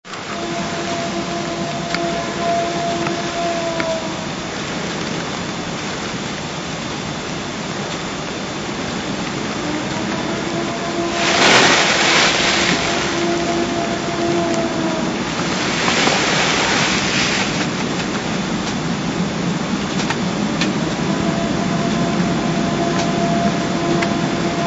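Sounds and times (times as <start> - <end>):
fire siren: 0.1 - 4.7, 8.8 - 17.9, 20.6 - 24.6
strong wind: 0.1 - 24.6.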